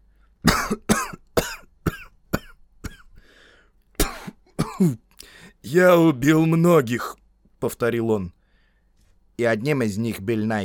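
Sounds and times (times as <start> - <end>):
man clearing his throat hoarsely: 0.4 - 3.2, 4.0 - 5.1
speech: 0.7 - 1.0, 4.8 - 8.4, 9.4 - 10.6.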